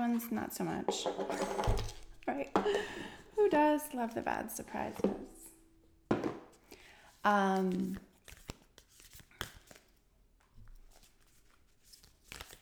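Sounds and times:
speech: 0:00.1 - 0:05.3, 0:07.2 - 0:08.1
deck of cards being shuffled: 0:07.6 - 0:10.0, 0:10.8 - 0:12.5.

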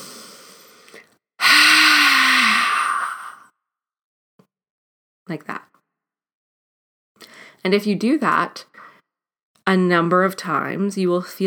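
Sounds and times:
quiet breath in during a breathing exercise: 0:00.0 - 0:01.1, 0:07.2 - 0:07.6
forceful breathy ha exhale during a breathing exercise: 0:00.0 - 0:03.5
speech: 0:05.3 - 0:05.6, 0:07.6 - 0:08.7, 0:09.7 - 0:11.4.

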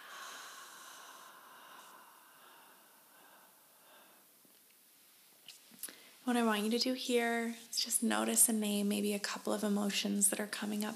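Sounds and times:
long slow breath out through the mouth: 0:00.0 - 0:04.2
speech: 0:06.3 - 0:10.9.

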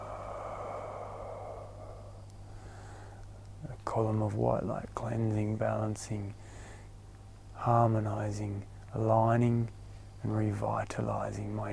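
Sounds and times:
slow long exhale during a guided breathing exercise: 0:00.0 - 0:03.4
speech: 0:03.9 - 0:06.6, 0:07.6 - 0:11.7.

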